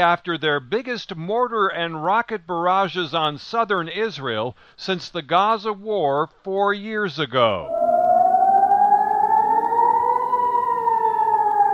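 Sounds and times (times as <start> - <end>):
speech: 0.0 - 7.8
air raid sirens wailing: 7.6 - 11.7.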